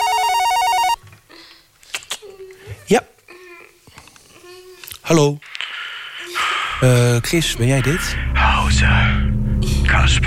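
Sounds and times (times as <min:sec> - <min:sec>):
telephone ringing in a doctor's room with a warbling electronic tone: 0:00.0 - 0:01.0
speech: 0:02.9 - 0:03.1, 0:05.1 - 0:05.5, 0:06.8 - 0:09.3, 0:09.9 - 0:10.2.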